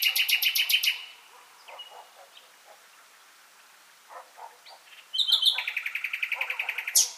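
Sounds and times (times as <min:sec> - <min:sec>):
common nightingale Luscinia megarhynchos singing: 0:00.0 - 0:02.9, 0:04.6 - 0:07.1.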